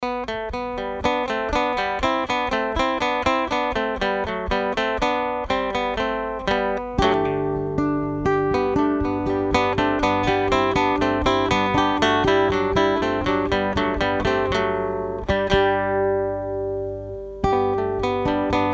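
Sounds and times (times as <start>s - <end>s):
acoustic musette music: 0.0s - 18.7s.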